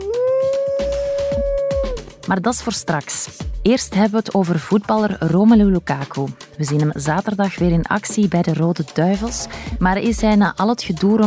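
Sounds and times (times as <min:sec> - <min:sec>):
wolf howling: 0:00.0 - 0:02.3
speech: 0:02.3 - 0:11.2.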